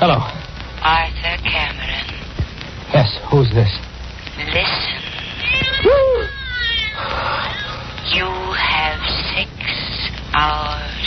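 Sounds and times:
speech: 0.0 - 1.8, 3.0 - 3.9
faint hiss: 0.0 - 11.0
cat meowing over a telephone line: 4.9 - 7.8.

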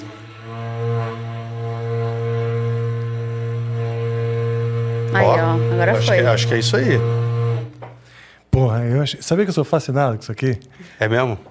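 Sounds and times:
berrante cattle horn blown: 0.0 - 7.8
speech: 5.2 - 7.2, 8.8 - 11.4.

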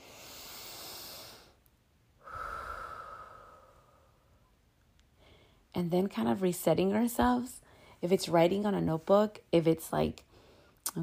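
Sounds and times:
deep human breath: 0.0 - 1.6, 2.2 - 4.5, 5.1 - 5.7, 7.6 - 8.0, 10.3 - 10.8
speech: 5.8 - 10.3, 10.9 - 11.0.

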